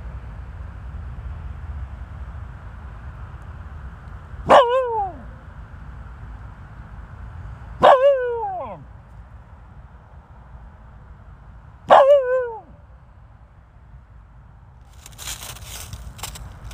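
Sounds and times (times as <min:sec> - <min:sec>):
steady low outdoor rumble: 0:00.0 - 0:16.7
dog barking: 0:04.5 - 0:05.2, 0:07.8 - 0:08.8, 0:11.9 - 0:12.6.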